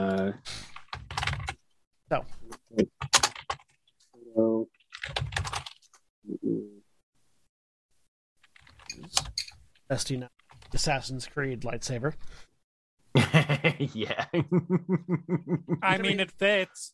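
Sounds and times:
computer keyboard typing: 0.1s - 1.6s, 2.5s - 3.8s, 4.8s - 6.0s
speech: 2.1s - 3.0s, 9.9s - 12.5s, 13.3s - 16.9s
laughter: 13.2s - 16.6s.

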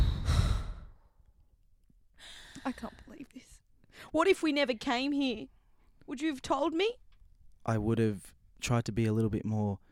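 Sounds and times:
person exhaling a held breath during a guided breathing exercise: 0.0s - 1.0s
speech: 2.6s - 7.0s, 7.6s - 9.9s.

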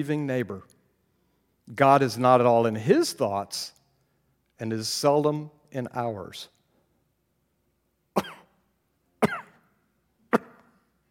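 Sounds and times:
speech: 0.0s - 0.8s, 1.7s - 3.8s, 4.6s - 6.6s, 8.2s - 8.4s
person giving deliberate fake coughs: 8.2s - 8.6s, 9.2s - 9.7s, 10.3s - 10.7s.

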